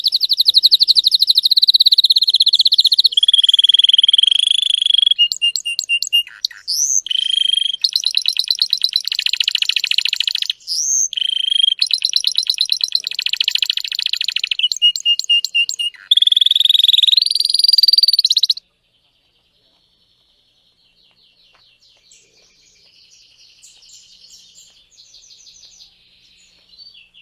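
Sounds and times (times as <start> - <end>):
Spanish Timbrado canary song: 0.0 - 27.2.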